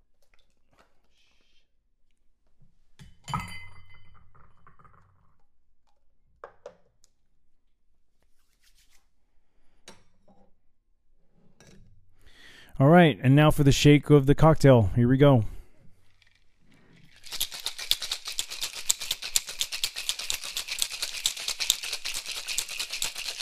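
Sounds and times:
speech: 12.8 - 15.5
ice rattling and clinking against a chilled rocks glass: 17.0 - 23.4.

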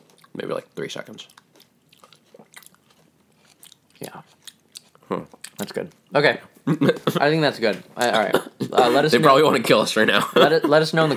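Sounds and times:
chewing and crunching food with wet bites: 0.0 - 6.7
speech: 0.4 - 1.4, 5.1 - 11.1.

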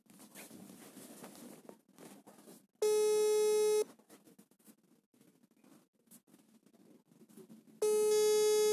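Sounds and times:
faint low noise: 0.0 - 8.7
phone ringback tone while a call is placed: 2.8 - 3.9, 7.8 - 8.7.

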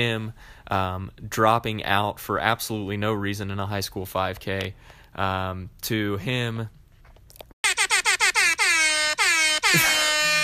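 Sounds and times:
speech: 0.0 - 6.8
loud hype-style air horn sound effect blasts: 7.6 - 10.4.

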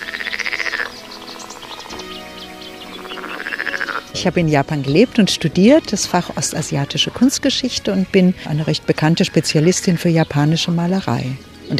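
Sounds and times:
frogs croaking in a loud rapid chorus: 0.0 - 11.7
speech: 4.2 - 11.7.

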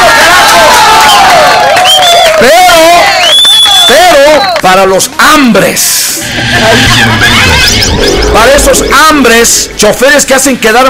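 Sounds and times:
crowd applause: 0.0 - 3.5
crowd cheering: 0.0 - 4.6
speech: 4.7 - 10.8.

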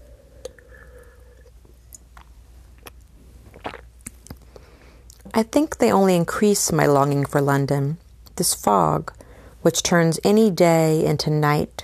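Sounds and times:
person sipping a drink with wet slurping: 0.0 - 5.2
low hum: 0.0 - 11.8
swallowing: 0.2 - 4.4
speech: 5.4 - 11.8.

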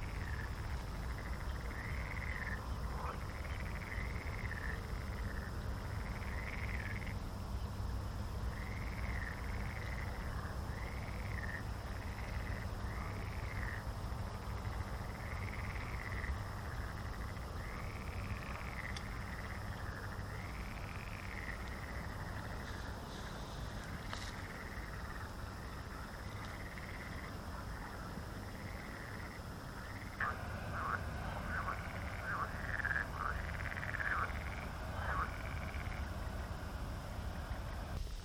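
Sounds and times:
chorus of frogs croaking at night: 0.0 - 38.0
faint insect-like hiss: 0.0 - 38.2
steady low rumble: 30.1 - 38.0.

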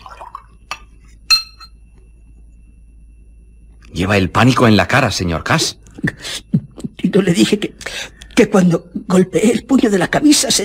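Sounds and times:
drink poured into a wine glass: 0.0 - 0.6
wine glass clinking: 0.0 - 2.1
speech: 3.9 - 6.5, 7.1 - 10.6.

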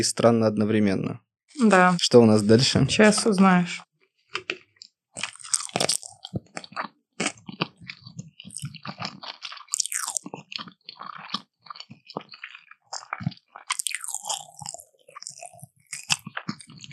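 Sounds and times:
speech: 0.0 - 4.6
chewing sushi rolls topped with eel: 4.4 - 16.9.

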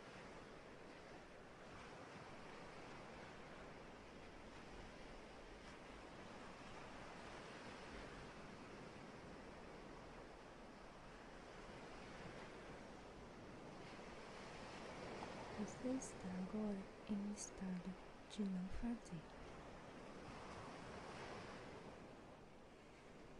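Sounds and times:
ocean waves washing onto the shore: 0.0 - 23.3
speech: 15.8 - 19.4.

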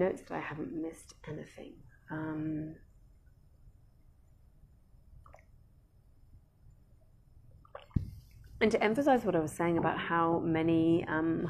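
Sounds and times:
speech: 0.0 - 2.9, 8.6 - 11.4
low steady hum: 0.0 - 11.4
person sipping water: 5.2 - 5.6, 7.5 - 8.6.

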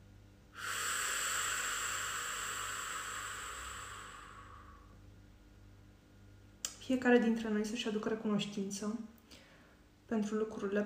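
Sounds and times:
slow breathing during a guided breathing exercise: 0.5 - 5.1, 9.2 - 9.9
speech: 6.9 - 9.2, 10.1 - 10.8.

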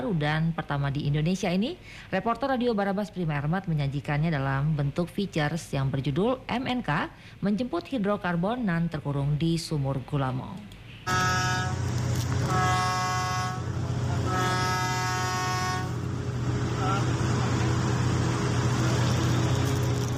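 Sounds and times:
speech: 0.0 - 11.9
long loud horn blasts at a drilling rig: 11.0 - 17.8
generator rumbling at a drilling rig: 11.1 - 20.1.

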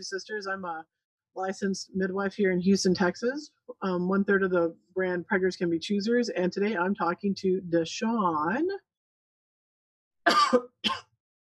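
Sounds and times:
speech: 0.0 - 8.9, 10.3 - 11.0
person coughing: 10.3 - 11.1.

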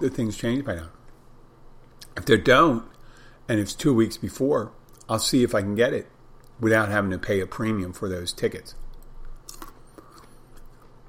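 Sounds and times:
speech: 0.0 - 1.0, 2.2 - 2.9, 3.5 - 8.8
faint steady hum: 0.0 - 11.0
person chewing food with crisp crunches: 8.9 - 11.0.

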